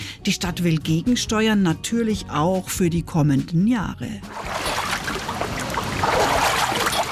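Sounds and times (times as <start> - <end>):
speech: 0.2 - 4.6
feet wading through water in Kneipp basin: 4.3 - 7.1.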